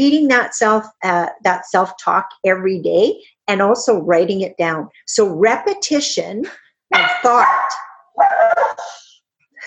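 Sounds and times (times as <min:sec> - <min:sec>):
speech: 0:00.0 - 0:09.0
dogs barking: 0:06.9 - 0:08.9.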